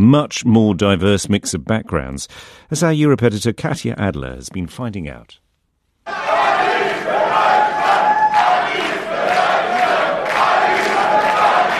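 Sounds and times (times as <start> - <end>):
speech: 0.0 - 5.4
large rally crowd chanting in unison in Germany: 6.1 - 11.7.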